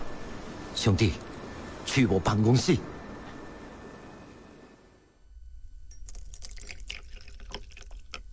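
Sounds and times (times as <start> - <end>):
speech: 0.8 - 2.9
tea pouring into a cup in an office: 6.0 - 8.3.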